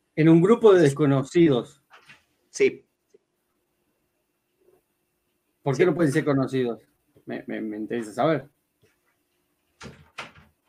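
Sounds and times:
speech: 0:00.2 - 0:01.8, 0:02.6 - 0:02.8, 0:05.6 - 0:08.6, 0:09.8 - 0:10.0
door being pushed shut and latching: 0:09.8 - 0:10.6.

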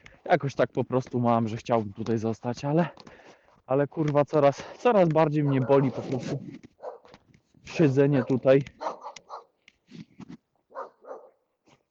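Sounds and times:
speech: 0:00.3 - 0:06.7, 0:07.7 - 0:08.8
several dogs barking: 0:05.2 - 0:09.6, 0:10.7 - 0:11.4.

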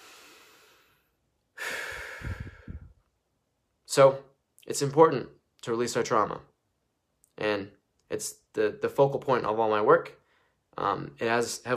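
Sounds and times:
deep breathing: 0:00.0 - 0:03.1
speech: 0:04.0 - 0:06.5, 0:07.4 - 0:10.2, 0:10.8 - 0:11.7.

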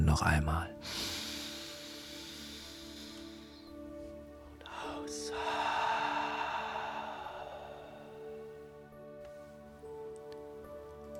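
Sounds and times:
speech: 0:00.2 - 0:01.1
slow deep breaths through the mouth: 0:00.8 - 0:09.5
steady low humming drone: 0:00.9 - 0:09.2.

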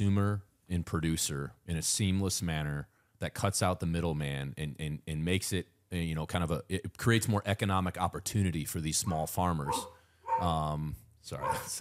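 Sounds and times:
speech: 0:00.0 - 0:11.7
chocolate labrador dog barking outside: 0:09.7 - 0:10.6, 0:11.4 - 0:11.7.

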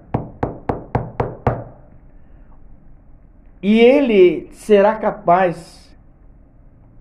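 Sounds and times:
firm knocking on a wooden door: 0:00.1 - 0:01.8
speech: 0:03.6 - 0:05.8.

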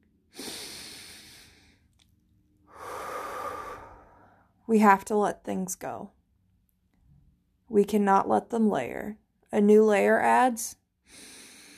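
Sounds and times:
slow breathing out through the airway in a calming breath exercise: 0:00.3 - 0:02.0, 0:02.6 - 0:04.6, 0:11.1 - 0:11.7
speech: 0:04.7 - 0:06.2, 0:07.7 - 0:11.3.

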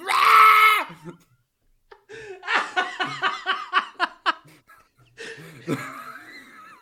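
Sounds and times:
person screaming high-pitched: 0:00.0 - 0:01.0
laughter: 0:01.9 - 0:06.8.

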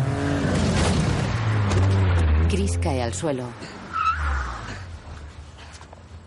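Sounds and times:
taxi engine rumbling: 0:00.0 - 0:06.2
speech: 0:02.5 - 0:03.8
taxi tires squealing in a skid: 0:03.9 - 0:04.8.

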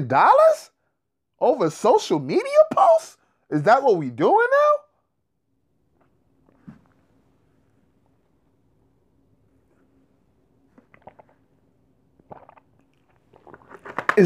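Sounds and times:
speech: 0:00.0 - 0:00.7, 0:01.4 - 0:04.8
low hum: 0:00.0 - 0:14.2
person sipping a drink with slurping and swallowing: 0:10.6 - 0:14.0.

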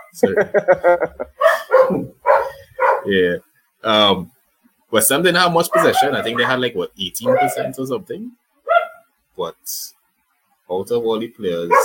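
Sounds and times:
speech: 0:00.1 - 0:02.1, 0:03.1 - 0:04.3, 0:04.9 - 0:08.4, 0:09.4 - 0:10.0, 0:10.7 - 0:11.8
laughter: 0:00.2 - 0:01.4
dog barking and yipping: 0:01.3 - 0:03.1, 0:05.7 - 0:07.8, 0:08.6 - 0:09.1.

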